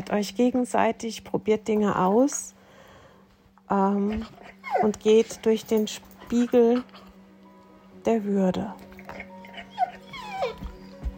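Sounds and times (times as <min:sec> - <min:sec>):
speech: 0:00.0 - 0:02.6, 0:03.7 - 0:07.0, 0:08.0 - 0:08.8
low steady hum: 0:00.0 - 0:11.1
dogs whimpering and yipping to play: 0:04.0 - 0:07.2, 0:08.8 - 0:11.1.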